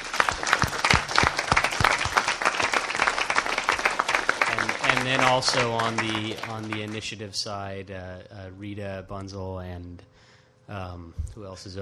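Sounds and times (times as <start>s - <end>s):
room full of people applauding: 0.0s - 7.2s
speech: 5.0s - 11.8s.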